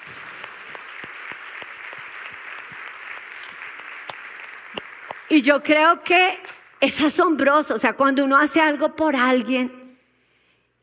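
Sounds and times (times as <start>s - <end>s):
audience crowd clapping: 0.0s - 5.6s
speech: 5.3s - 9.8s.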